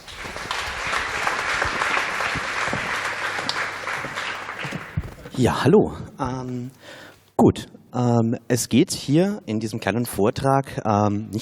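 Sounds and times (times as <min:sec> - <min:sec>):
audience applauding: 0:00.0 - 0:05.4
speech: 0:05.4 - 0:06.8, 0:07.4 - 0:11.4.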